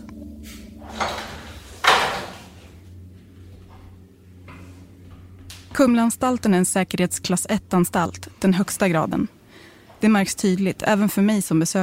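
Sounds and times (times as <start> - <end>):
low hum: 0.0 - 11.8
heavy door thudding shut: 0.8 - 2.7
speech: 5.8 - 9.4, 10.0 - 11.8.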